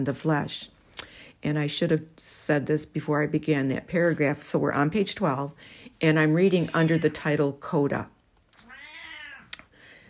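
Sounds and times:
speech: 0:00.0 - 0:00.8, 0:01.4 - 0:08.2
elderly cat crying and meowing: 0:08.6 - 0:09.6.

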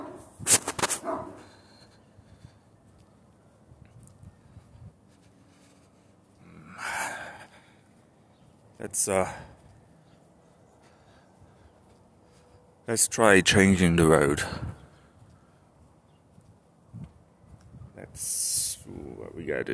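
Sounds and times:
dog barking outdoors: 0:00.0 - 0:00.3, 0:00.9 - 0:01.6
speech: 0:08.8 - 0:09.5, 0:12.9 - 0:14.8.

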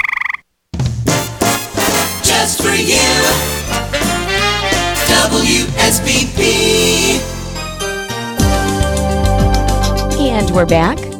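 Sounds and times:
frog croaking in a rattling burst: 0:00.0 - 0:00.5
music: 0:01.0 - 0:11.1
speech: 0:02.4 - 0:04.2, 0:05.5 - 0:07.4, 0:10.4 - 0:11.1.

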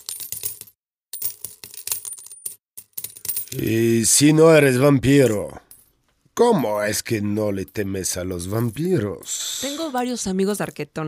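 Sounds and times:
coins from the linings of a coffin clinking: 0:00.0 - 0:03.9, 0:05.1 - 0:09.1
speech: 0:03.5 - 0:05.6, 0:06.4 - 0:11.0.

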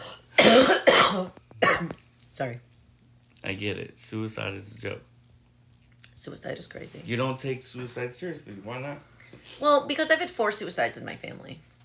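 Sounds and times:
loud harsh coughs: 0:00.0 - 0:02.0
speech: 0:00.7 - 0:02.7, 0:03.4 - 0:05.1, 0:06.2 - 0:11.7.

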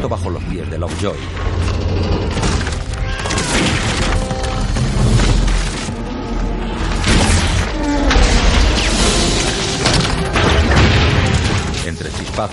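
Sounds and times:
speech: 0:00.0 - 0:02.6, 0:11.9 - 0:12.5
massive ship's hull cracking and splitting apart: 0:01.4 - 0:06.1, 0:06.9 - 0:12.5
crashing booms: 0:07.0 - 0:12.0.

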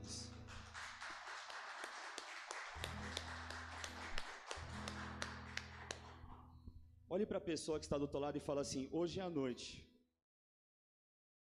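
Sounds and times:
crowd applauding: 0:00.3 - 0:06.5
speech: 0:07.1 - 0:09.9.

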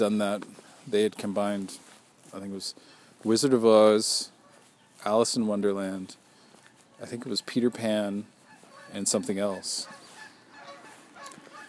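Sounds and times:
speech: 0:00.0 - 0:04.3, 0:05.0 - 0:06.2, 0:07.0 - 0:08.3, 0:08.9 - 0:10.0
faint outdoor background: 0:00.0 - 0:11.6
Canada geese honking: 0:02.8 - 0:11.6.

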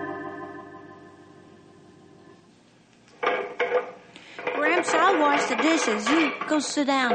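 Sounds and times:
dishes clinking and clattering while being washed: 0:03.2 - 0:07.1
person talking: 0:04.4 - 0:07.1.

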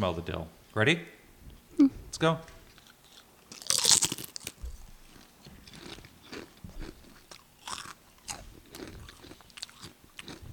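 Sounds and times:
speech: 0:00.0 - 0:01.2, 0:01.8 - 0:02.5
biting and chewing crisp dill pickle potato chips: 0:02.8 - 0:10.5.

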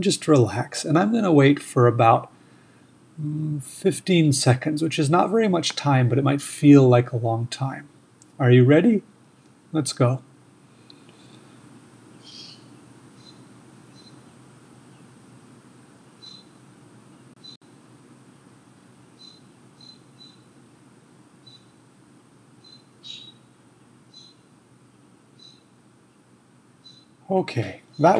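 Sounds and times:
speech: 0:00.0 - 0:02.3, 0:03.2 - 0:09.1, 0:09.7 - 0:10.3, 0:27.3 - 0:28.1
low ambient hum: 0:00.0 - 0:28.1
bird chirps from outside a window: 0:12.2 - 0:14.3, 0:16.2 - 0:16.6, 0:19.2 - 0:20.5, 0:21.4 - 0:21.8, 0:22.6 - 0:23.5, 0:24.1 - 0:24.4, 0:25.4 - 0:25.7, 0:26.8 - 0:27.2.

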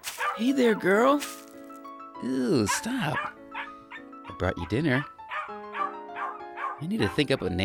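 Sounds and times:
speech: 0:00.4 - 0:01.4, 0:02.2 - 0:03.3, 0:04.4 - 0:05.1, 0:06.8 - 0:07.6
female puppy yipping and whining in a barn: 0:05.3 - 0:06.7.

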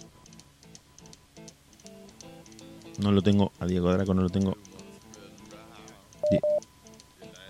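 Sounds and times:
speech: 0:03.0 - 0:04.7
short loud electronic beeps from a phone line during a failed call: 0:06.2 - 0:06.6.

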